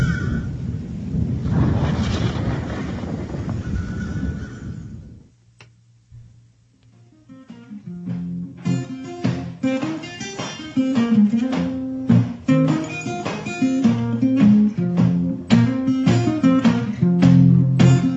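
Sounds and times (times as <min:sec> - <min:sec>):
thunder rumbling: 0:00.0 - 0:05.4
music with a plucked, ticking rhythm: 0:07.0 - 0:18.1.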